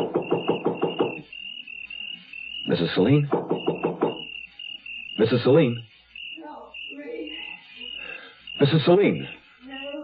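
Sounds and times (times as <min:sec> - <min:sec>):
quick loud knocks on the front door of a house: 0:00.0 - 0:01.3, 0:03.1 - 0:04.3
speech: 0:02.7 - 0:03.4, 0:05.2 - 0:05.9, 0:08.6 - 0:09.4.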